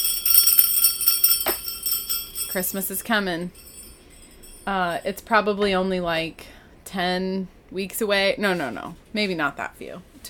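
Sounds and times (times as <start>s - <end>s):
sleigh bells jingling: 0.0s - 5.2s
speech: 2.5s - 3.6s, 4.7s - 10.2s.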